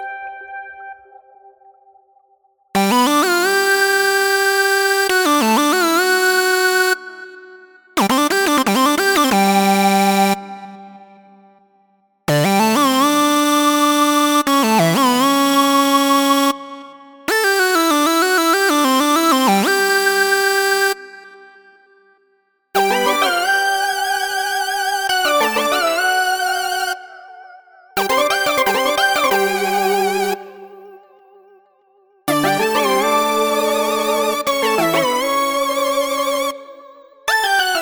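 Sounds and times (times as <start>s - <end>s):
synth melody: 2.8s - 11.5s, 12.3s - 21.6s, 22.8s - 27.0s, 28.0s - 30.8s, 32.3s - 36.8s, 37.3s - 37.8s.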